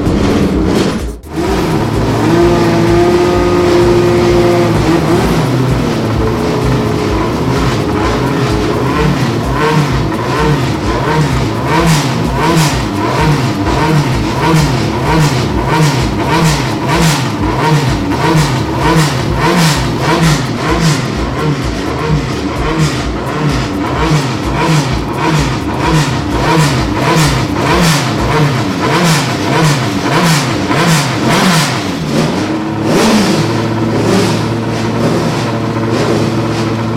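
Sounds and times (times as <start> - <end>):
current-season Formula 3 race car engine starting and revving: 0.0 - 36.9.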